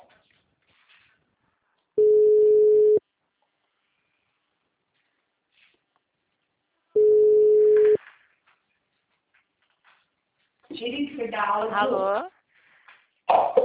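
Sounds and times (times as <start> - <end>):
telephone busy tone after a dropped call: 2.0 - 3.0, 7.0 - 8.0
speech: 11.0 - 12.4.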